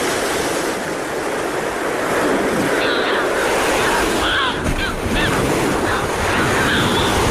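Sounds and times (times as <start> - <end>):
ocean surf roar: 0.0 - 7.2
Audouin's gulls calling: 1.4 - 7.2.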